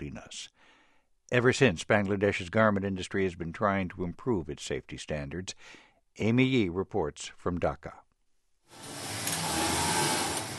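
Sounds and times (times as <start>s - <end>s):
speech: 0.0s - 0.6s, 1.3s - 8.0s
dozens of sewing machines whirring on a garment factory floor near Dhaka, Bangladesh: 8.7s - 10.5s.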